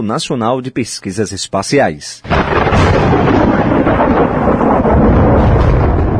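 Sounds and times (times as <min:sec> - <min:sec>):
speech: 0:00.0 - 0:04.4
loud sustained rumbling thunder from lightning strikes: 0:02.2 - 0:06.1.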